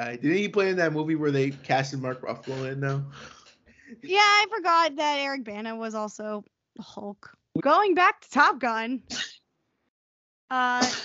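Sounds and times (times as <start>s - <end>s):
speech: 0.0s - 9.3s, 10.5s - 11.0s
single loud sneeze: 9.1s - 9.4s, 10.8s - 11.0s.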